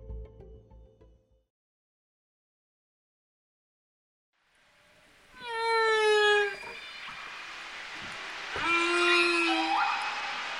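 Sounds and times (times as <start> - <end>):
faint watery hiss: 4.4 - 10.5
whale calls underwater: 5.3 - 10.5.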